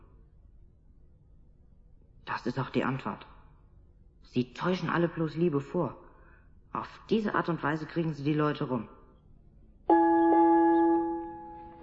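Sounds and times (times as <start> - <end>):
speech: 2.3 - 3.3, 4.3 - 6.0, 6.7 - 9.0
dinner gong struck and ringing: 9.9 - 11.8.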